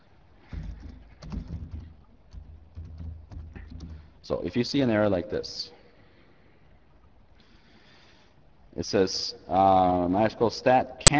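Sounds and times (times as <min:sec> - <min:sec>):
typing on a computer keyboard: 0:00.7 - 0:04.2
speech: 0:04.3 - 0:05.8, 0:08.8 - 0:11.1.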